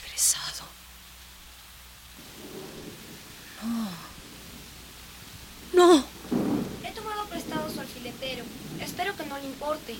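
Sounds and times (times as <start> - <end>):
steady heavy rain: 0.0 - 9.9
speech: 0.5 - 0.9, 9.6 - 9.9
deep rumble of thunder: 2.1 - 9.9.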